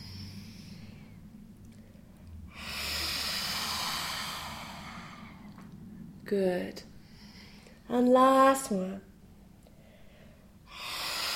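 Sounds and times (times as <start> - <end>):
person breathing deeply during a guided breathing exercise: 0.0 - 6.1, 6.9 - 7.8, 9.7 - 11.3
speech: 6.3 - 6.9, 7.9 - 9.1.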